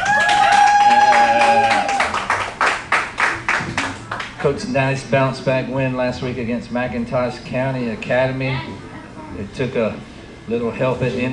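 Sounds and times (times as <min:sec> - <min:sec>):
loud high drawn-out whooping cheer: 0:00.0 - 0:02.4
sharp evenly spaced hand claps: 0:00.0 - 0:04.5
speech: 0:04.4 - 0:11.3.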